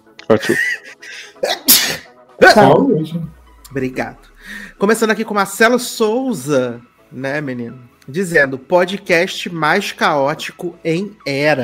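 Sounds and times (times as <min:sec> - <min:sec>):
laughter: 0:00.3 - 0:01.6
speech: 0:00.3 - 0:11.6
person sneezing: 0:01.4 - 0:02.7.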